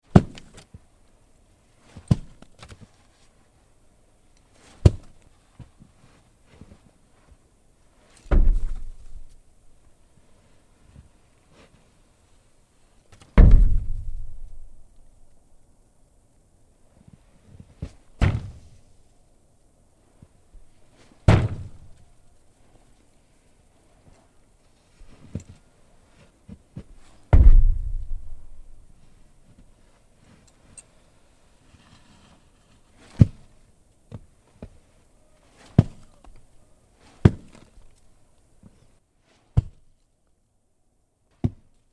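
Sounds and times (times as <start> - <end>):
snowball impacts on face, body, glass, wood and ground: 0.1 - 0.6, 1.8 - 2.4, 4.6 - 5.2, 8.3 - 9.4, 13.3 - 15.0, 17.8 - 18.8, 21.0 - 22.0, 26.5 - 29.2, 33.0 - 34.2, 35.6 - 36.1, 37.0 - 37.9, 39.5 - 39.9.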